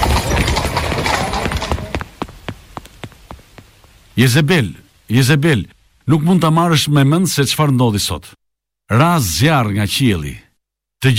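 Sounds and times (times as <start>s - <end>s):
horse-drawn carriage hooves clopping to a stop: 0.0s - 4.2s
rainstorm rushing wash: 0.0s - 6.1s
speech: 4.2s - 10.4s, 11.0s - 11.1s.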